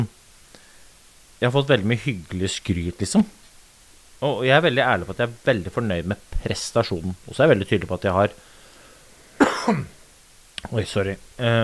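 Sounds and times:
speech: 0:01.4 - 0:03.4, 0:04.2 - 0:08.5, 0:09.6 - 0:10.0, 0:10.6 - 0:11.6
person coughing harshly: 0:09.4 - 0:10.0.

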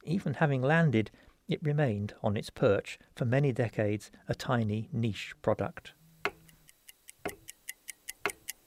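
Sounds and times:
speech: 0:00.1 - 0:06.0
cuckoo clock ticking: 0:06.2 - 0:08.6.

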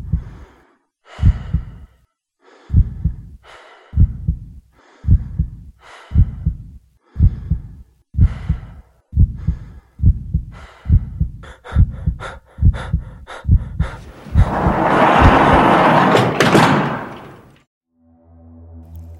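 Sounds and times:
steady thudding heartbeats: 0:00.0 - 0:00.4, 0:01.2 - 0:01.9, 0:02.7 - 0:16.9
heavy prison cell door on death row grinding and sliding open: 0:14.0 - 0:17.6.

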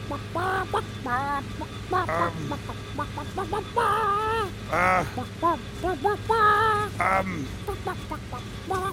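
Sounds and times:
low steady hum: 0:00.0 - 0:08.9
person imitating a clucking chicken: 0:01.9 - 0:02.8, 0:04.7 - 0:05.3, 0:06.8 - 0:07.6.

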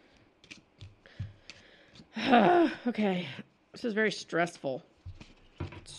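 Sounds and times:
papery riffles and soft clicks of playing cards: 0:00.1 - 0:02.1
deck of playing cards shuffling: 0:00.2 - 0:02.1, 0:04.4 - 0:05.9
speech: 0:02.2 - 0:04.9.

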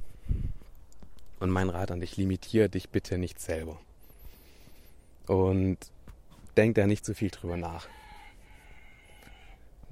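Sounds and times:
faint outdoor ambience: 0:00.0 - 0:09.9
speech: 0:01.4 - 0:03.9, 0:05.3 - 0:06.0, 0:06.6 - 0:08.0
rooster crowing: 0:07.7 - 0:09.7.

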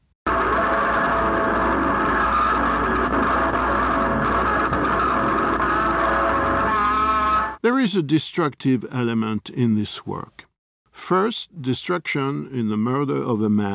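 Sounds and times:
amplified electric guitar dragged behind a truck at very high volume: 0:00.3 - 0:07.6
speech: 0:07.6 - 0:10.5, 0:11.1 - 0:13.7.

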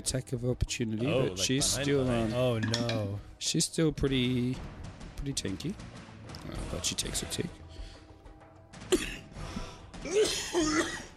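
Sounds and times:
speech: 0:00.0 - 0:07.6
throat clearing from a scratchy throat: 0:08.9 - 0:09.2, 0:10.1 - 0:11.1.

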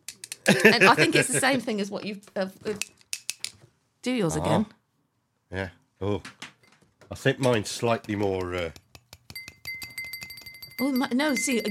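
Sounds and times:
laughter: 0:00.5 - 0:01.7
speech: 0:00.5 - 0:03.0, 0:04.0 - 0:04.8, 0:05.5 - 0:06.4, 0:07.1 - 0:08.8, 0:10.8 - 0:11.6
drinking glass tapped and ringing: 0:08.0 - 0:11.6.

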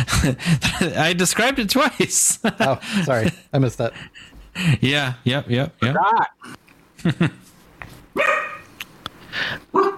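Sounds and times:
speech: 0:00.2 - 0:07.4, 0:08.2 - 0:08.5
dog barking: 0:08.2 - 0:08.7, 0:09.7 - 0:09.9.

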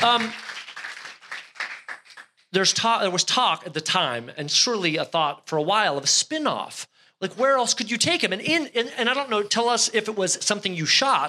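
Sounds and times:
speech: 0:00.0 - 0:00.5, 0:02.5 - 0:11.2
applause: 0:00.0 - 0:02.4.

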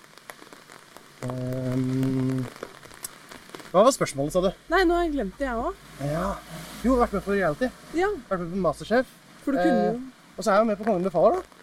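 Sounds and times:
heavy rain on a hard surface: 0:00.0 - 0:11.6
speech: 0:01.2 - 0:02.2, 0:03.7 - 0:11.6
loud low droning tone: 0:05.4 - 0:08.8.

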